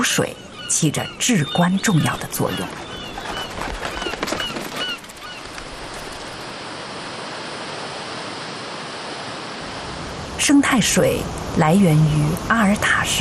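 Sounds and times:
speech: 0.0 - 2.9, 10.4 - 13.1
rushing river water released from reservoir: 3.5 - 13.1.

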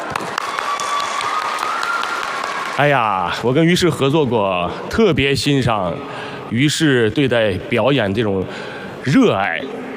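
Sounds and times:
audience applause after a show: 0.0 - 3.3
speech: 2.8 - 9.8.

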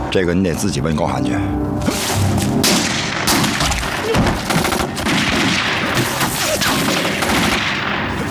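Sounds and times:
speech: 0.1 - 2.1
rapid sustained gunfire: 2.7 - 8.1.

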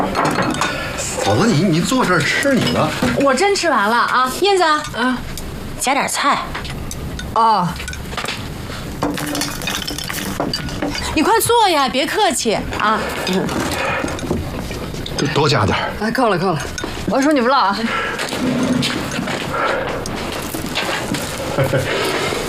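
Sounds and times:
bowls and chopsticks clinking at a dinner table: 0.0 - 5.5, 6.7 - 8.3, 9.0 - 11.6, 12.8 - 15.8, 16.4 - 17.6
lively conversation from several people around a dinner table: 0.0 - 22.4
speech: 1.3 - 6.6, 7.4 - 7.9, 11.2 - 13.7, 15.2 - 18.9, 21.6 - 22.2.

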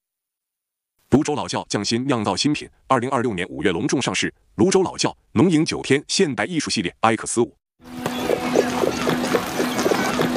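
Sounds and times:
speech: 1.1 - 8.0
hooves of a horse pulling a carriage clip-clopping: 8.0 - 10.3.

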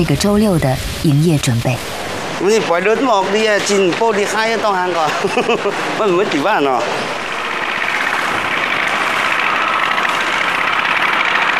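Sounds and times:
speech: 0.0 - 7.2
laughter: 4.8 - 6.4
small motorbike engine running: 7.2 - 11.5.

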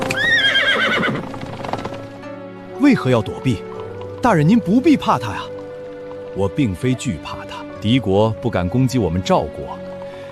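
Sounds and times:
horse pulling a carriage whinnying: 0.0 - 2.1
horse pulling a general's carriage hooves clip-clopping: 0.0 - 7.6
speech: 2.8 - 5.5, 6.3 - 9.8.

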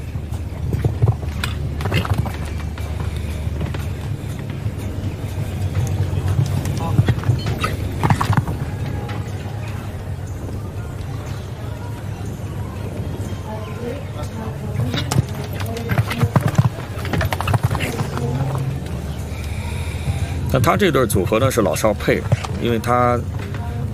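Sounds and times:
hoofbeats of a Belgian warmblood stallion in competition: 0.0 - 12.2, 13.0 - 23.9
dense steady noise: 0.0 - 23.9
speech: 20.6 - 23.4.

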